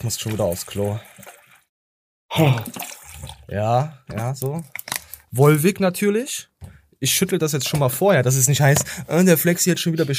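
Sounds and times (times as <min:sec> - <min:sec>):
speech: 0:00.0 - 0:01.4, 0:02.4 - 0:02.9, 0:03.5 - 0:10.1
water pouring into a container with gurgling rising tone: 0:00.0 - 0:01.7, 0:02.3 - 0:03.9
water splashing: 0:00.0 - 0:01.7, 0:02.4 - 0:03.6.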